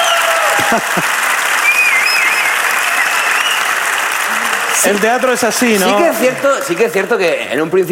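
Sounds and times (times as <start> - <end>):
audience applause: 0.0 - 7.8
speech: 0.7 - 1.3, 4.8 - 7.8
whistle-like tone: 1.6 - 3.7.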